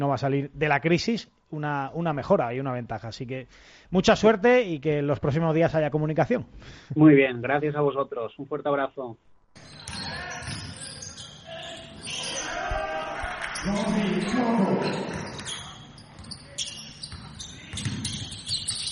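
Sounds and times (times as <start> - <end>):
speech: 0.0 - 9.9, 13.6 - 14.7
basketball bouncing on a court: 14.8 - 18.9.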